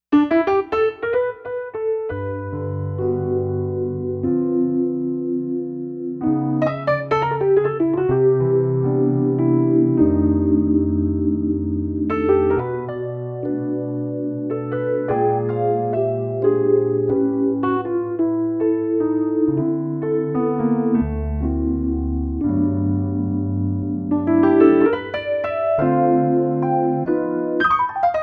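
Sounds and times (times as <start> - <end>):
layered digital keyboard sounds: 0.0 - 28.2
piano: 0.0 - 28.2.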